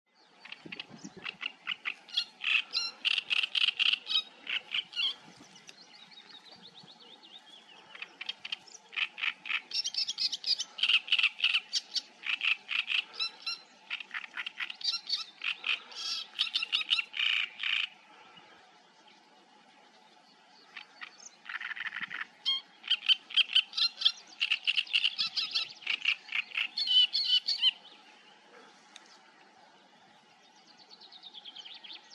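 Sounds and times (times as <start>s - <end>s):
reed warbler singing: 0.1s - 18.0s, 18.9s - 32.1s.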